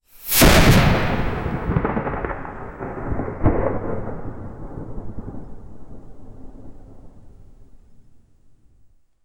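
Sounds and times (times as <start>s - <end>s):
wizard casting a powerful lightning spell: 0.2s - 2.8s.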